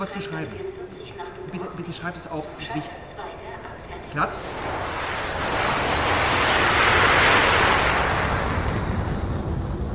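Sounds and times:
speech: 0.0s - 0.8s, 1.5s - 3.3s, 4.1s - 5.6s
jet airplane taking off: 3.6s - 9.9s.

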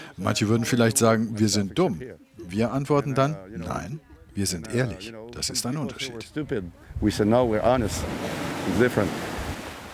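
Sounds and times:
speech: 0.2s - 9.3s
sea waves on a beach: 6.9s - 9.9s.

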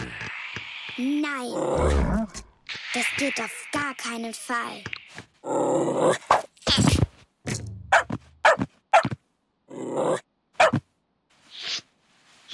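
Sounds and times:
speech: 1.0s - 6.3s
dog barking: 7.9s - 9.1s, 10.6s - 10.8s.

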